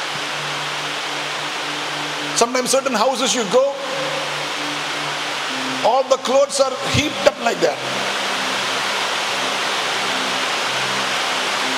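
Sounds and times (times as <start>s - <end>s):
heavy rain pouring down: 0.0s - 11.7s
speech: 2.4s - 3.7s, 5.9s - 8.1s.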